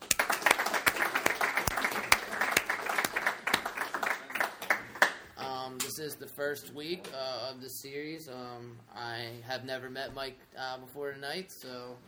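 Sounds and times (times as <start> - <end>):
audience applause at an Alcoholics Anonymous meeting welcoming the speaker: 0.0 - 5.3
speech: 6.0 - 12.0.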